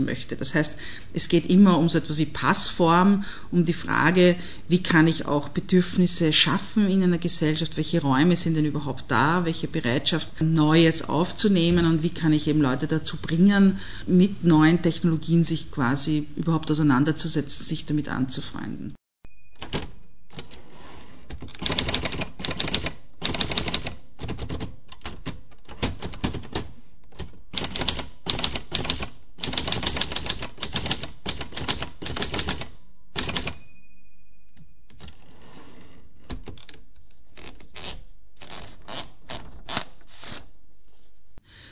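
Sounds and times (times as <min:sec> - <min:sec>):
speech: 0:00.0 - 0:19.0
typewriter bell-like ding: 0:19.2 - 0:20.9, 0:33.1 - 0:35.6
typewriter carriage return: 0:19.5 - 0:33.6, 0:34.9 - 0:40.4
mechanical typewriter keystrokes: 0:21.3 - 0:33.6.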